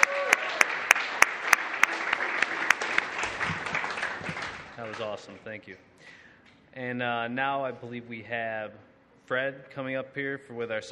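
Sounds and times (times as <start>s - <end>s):
audience applause: 0.0s - 5.4s
sharp regular claps: 0.0s - 5.4s
speech: 5.0s - 6.2s, 6.8s - 10.9s.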